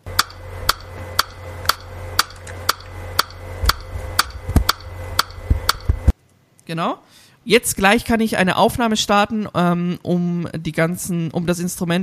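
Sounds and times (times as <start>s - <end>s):
metronome clicks from recording software: 0.2s - 6.0s
speech: 6.7s - 12.0s.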